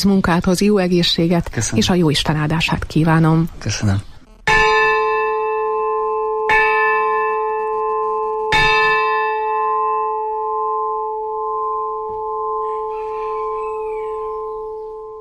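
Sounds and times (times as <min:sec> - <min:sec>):
speech: 0:00.0 - 0:04.1
large church bell tolling: 0:04.5 - 0:15.2.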